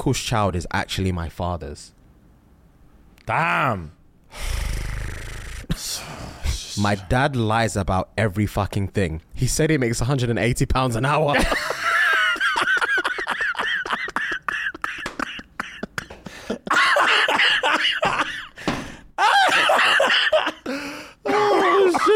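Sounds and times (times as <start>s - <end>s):
speech: 0.0s - 2.0s, 3.2s - 4.6s, 6.8s - 11.7s
person gasping: 4.3s - 6.8s, 16.1s - 16.7s, 18.4s - 19.2s, 20.6s - 21.6s
person laughing breathily: 11.3s - 18.6s, 19.2s - 20.7s
person coughing: 13.8s - 18.8s, 19.4s - 22.1s.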